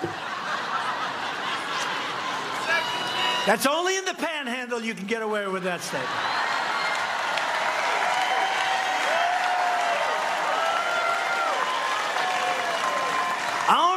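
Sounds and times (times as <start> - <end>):
laughter: 0.0 - 3.5, 5.3 - 7.1
political rally supporters in Florida cheering and shouting: 1.8 - 4.0, 5.9 - 13.9
speech: 3.4 - 6.5
political rally supporters applauding: 6.2 - 13.9.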